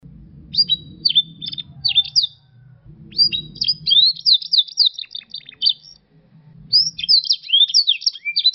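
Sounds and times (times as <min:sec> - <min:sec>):
low rumbling background hum: 0:00.0 - 0:07.7
Yorkshire and Russian canary singing: 0:00.0 - 0:08.5.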